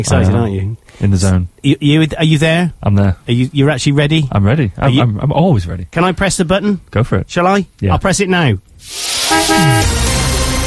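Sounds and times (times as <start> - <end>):
speech: 0.0 - 10.1
motorbike horn toot: 9.2 - 10.0.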